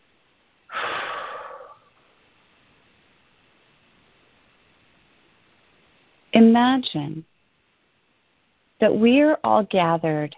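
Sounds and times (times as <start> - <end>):
deep airy breath during a guided meditation: 0.7 - 2.2
speech: 6.4 - 7.3, 8.8 - 10.3.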